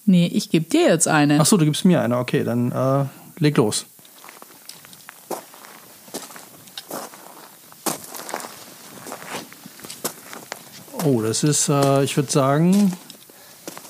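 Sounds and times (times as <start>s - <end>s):
faint hiss: 0.0s - 13.8s
speech: 0.1s - 3.9s, 11.0s - 13.1s
slow soft scuffing footsteps: 4.0s - 13.8s.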